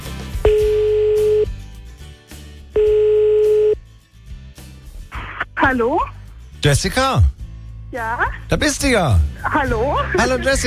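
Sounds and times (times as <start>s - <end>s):
telephone ringing tone on a line as a call is placed: 0.5s - 1.5s, 2.8s - 3.8s
speech: 5.7s - 10.6s.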